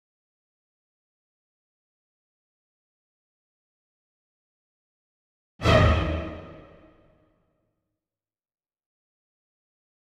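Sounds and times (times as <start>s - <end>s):
orchestral sting: 5.6s - 7.0s.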